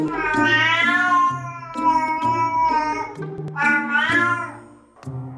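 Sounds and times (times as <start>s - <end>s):
cat yowling: 0.1s - 4.7s.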